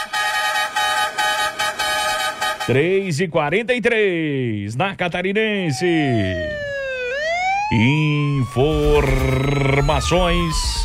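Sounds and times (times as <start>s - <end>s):
vehicle horn honking: 0.0s - 2.9s
speech: 2.7s - 6.6s, 7.7s - 10.8s
wavering voice-like sound: 5.6s - 6.9s, 7.7s - 10.8s.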